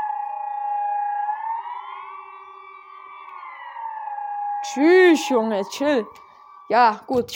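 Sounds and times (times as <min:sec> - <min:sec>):
siren wailing outside: 0:00.0 - 0:07.3
speech: 0:04.6 - 0:07.3.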